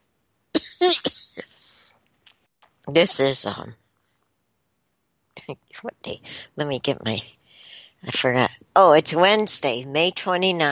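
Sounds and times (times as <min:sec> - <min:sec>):
person coughing: 0:00.6 - 0:01.9
speech: 0:00.8 - 0:01.1, 0:02.9 - 0:03.8, 0:05.5 - 0:07.4, 0:08.0 - 0:10.7.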